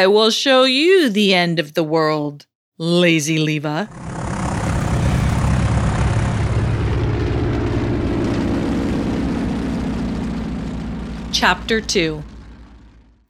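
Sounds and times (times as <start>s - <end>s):
speech: 0.0s - 4.2s, 11.4s - 12.3s
propeller airplane engine droning and moving away: 3.9s - 13.2s.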